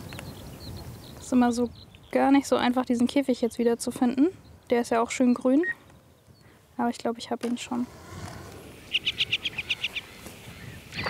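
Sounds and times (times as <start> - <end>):
female ground-nesting bird chirping as she flies off her nest: 0.0 - 6.6, 8.6 - 11.0
speech: 1.3 - 5.8, 6.8 - 8.1.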